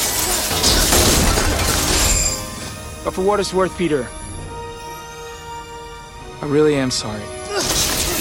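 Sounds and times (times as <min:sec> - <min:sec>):
giant shards of glass falling and shattering: 0:00.0 - 0:02.8, 0:07.5 - 0:08.1
speech: 0:03.1 - 0:04.3, 0:06.4 - 0:07.7.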